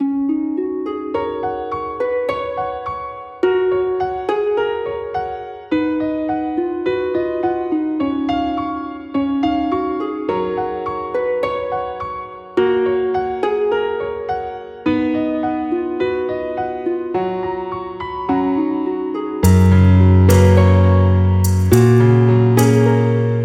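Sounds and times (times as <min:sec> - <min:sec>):
gentle and gorgeous music: 0:00.0 - 0:23.4.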